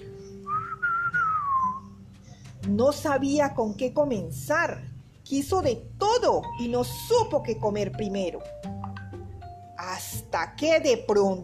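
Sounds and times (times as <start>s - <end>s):
mouse whistling with joy: 0.2s - 2.4s
speech: 2.6s - 8.6s, 10.3s - 11.4s.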